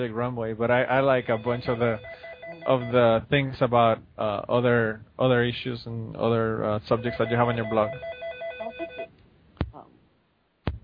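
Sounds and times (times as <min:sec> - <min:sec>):
speech: 0:00.0 - 0:08.2
telephone ringing with an electronic warbling tone: 0:01.2 - 0:03.0, 0:07.0 - 0:09.1.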